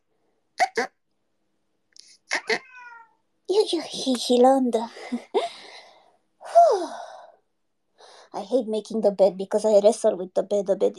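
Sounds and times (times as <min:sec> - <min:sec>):
speech: 0:00.8 - 0:01.0, 0:03.5 - 0:05.5, 0:08.4 - 0:10.9
cat meowing: 0:02.3 - 0:03.2.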